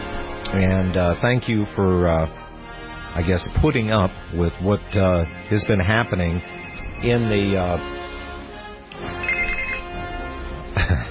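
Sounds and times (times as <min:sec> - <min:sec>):
speech: 0:00.5 - 0:02.4, 0:03.1 - 0:08.0
telephone ringing with electronic tone during live radio broadcast: 0:05.2 - 0:08.0, 0:09.0 - 0:10.2.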